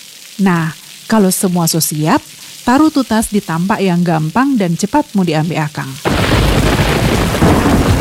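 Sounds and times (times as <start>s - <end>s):
loud steady rain pouring: 0.0s - 7.9s
speech: 0.4s - 7.3s
deep thunder rumbling: 5.9s - 7.9s.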